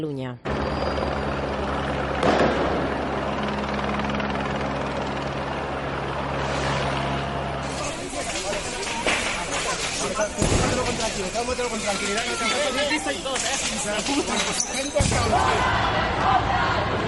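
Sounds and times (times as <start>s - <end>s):
speech: 0.0s - 1.3s, 10.2s - 17.0s
police helicopter rotor drone overhead: 0.4s - 17.0s
crowd noise: 7.6s - 17.0s.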